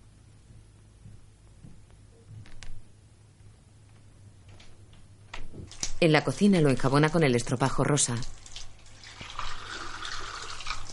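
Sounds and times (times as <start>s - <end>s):
speech: 6.0s - 8.4s
kitchen tap water running as a glass is rinsed: 8.1s - 10.9s.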